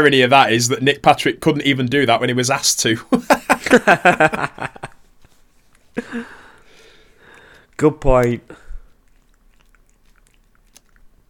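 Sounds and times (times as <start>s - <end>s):
speech: 0.0s - 4.9s, 7.8s - 8.6s
laughter: 3.1s - 5.0s
cat chewing Pringles crisps: 5.6s - 11.2s.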